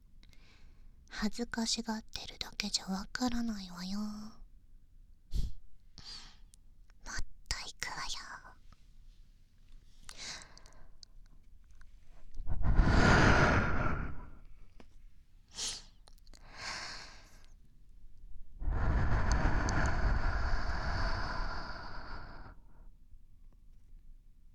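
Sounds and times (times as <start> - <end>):
speech: 1.2 - 4.4
long airy breaths blown softly into the ear: 12.4 - 14.5, 18.6 - 22.6.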